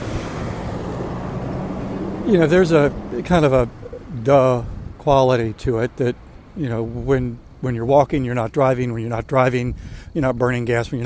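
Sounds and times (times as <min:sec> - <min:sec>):
tractor trailer rolling by with engine and road noise: 0:00.0 - 0:07.6
speech: 0:02.3 - 0:11.0.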